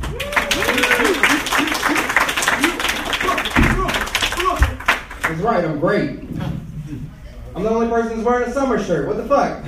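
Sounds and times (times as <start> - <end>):
scattered voices and whoops: 0.0 - 4.6
room full of people applauding: 0.0 - 5.3
speech: 5.4 - 9.6.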